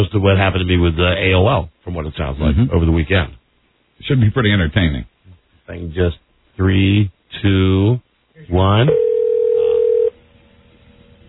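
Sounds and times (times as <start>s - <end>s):
speech: 0.0s - 3.4s, 4.0s - 5.1s, 5.7s - 9.1s
telephone dial tone as a dial-up internet modem connects: 8.9s - 10.1s.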